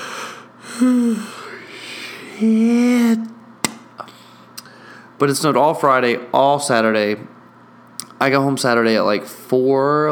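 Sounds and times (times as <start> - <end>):
person yawning with a low groaning tone: 0.0 - 3.4
speech: 0.8 - 1.4, 2.4 - 2.9, 5.2 - 7.4, 8.2 - 10.1.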